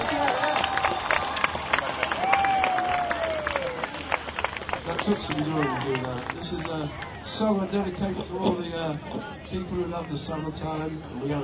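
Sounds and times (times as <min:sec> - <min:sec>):
concert crowd applauding: 0:00.0 - 0:07.8
speech: 0:05.0 - 0:11.4.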